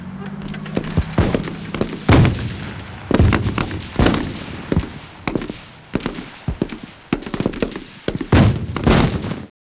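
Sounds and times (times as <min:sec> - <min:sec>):
battle ambience: 0:00.0 - 0:09.5.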